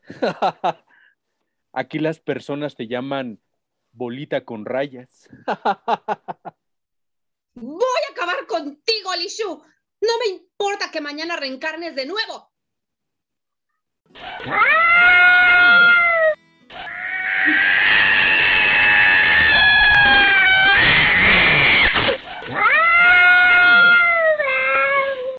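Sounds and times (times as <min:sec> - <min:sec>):
laughter: 0:00.0 - 0:00.9, 0:05.3 - 0:06.6
speech: 0:00.2 - 0:00.8, 0:01.8 - 0:03.4, 0:04.0 - 0:06.5, 0:08.6 - 0:12.5, 0:14.1 - 0:15.2
cats fighting and caterwauling: 0:14.1 - 0:25.3.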